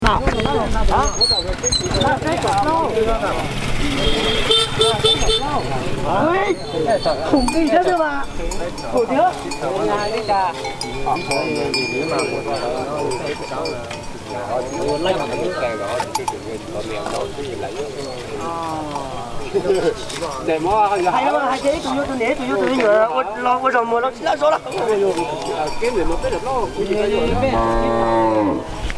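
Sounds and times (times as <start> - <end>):
crowd of people talking in a livestock market: 0.0 - 28.9
speech: 0.1 - 1.9, 5.6 - 28.9
cattle mooing in a livestock market: 27.2 - 28.8.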